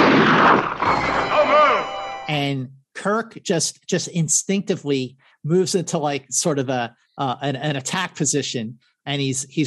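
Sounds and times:
loud gunshot blast: 0.0s - 1.8s
speech: 2.3s - 9.6s.

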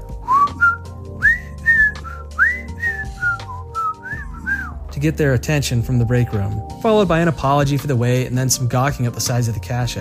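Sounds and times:
person whistling a tune at a truck stop casino cash-out counter: 0.2s - 4.8s
speech: 5.0s - 9.9s.

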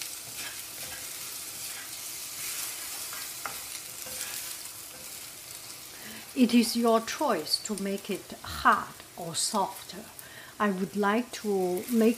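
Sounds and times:
bamboo spatula scraping a pan: 0.0s - 6.3s
food stir-frying in a pan: 0.0s - 12.1s
speech: 6.4s - 12.1s.

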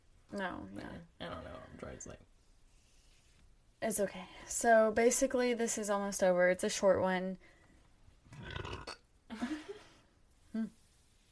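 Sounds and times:
speech: 0.3s - 2.3s, 3.8s - 7.6s
person burping: 8.3s - 9.0s.

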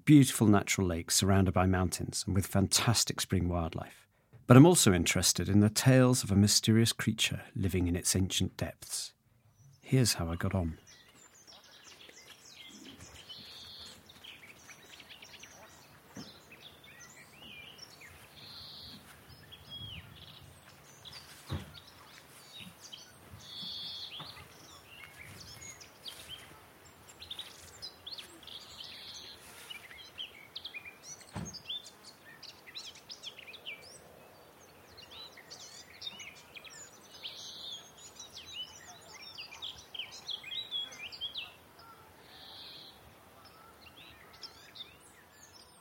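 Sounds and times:
other quiet bird sounds: 0.0s - 45.7s
speech: 0.1s - 9.2s, 9.9s - 10.8s
garden warbler singing: 9.4s - 45.7s.

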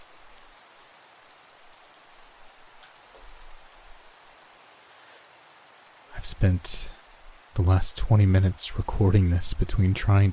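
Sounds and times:
rain falling: 0.0s - 10.3s
speech: 6.2s - 7.0s, 7.6s - 10.3s.

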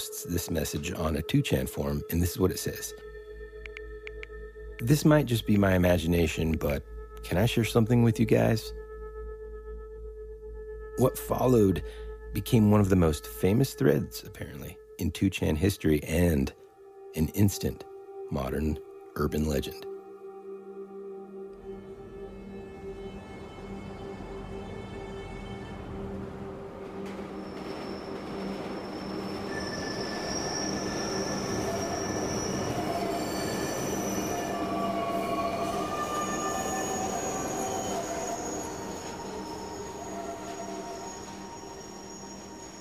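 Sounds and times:
speech: 0.2s - 3.1s, 4.8s - 8.8s, 11.0s - 16.6s, 17.2s - 19.9s
train running on rails: 22.5s - 42.7s
train wheels squealing: 23.4s - 42.7s.

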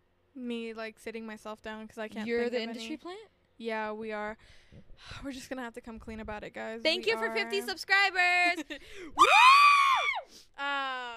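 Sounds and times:
speech: 0.4s - 11.1s
person screaming: 9.2s - 10.3s.

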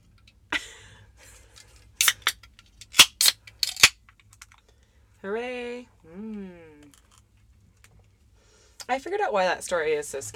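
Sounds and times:
beer can tab popping open: 2.0s - 4.0s
speech: 5.2s - 6.3s, 8.9s - 10.3s.

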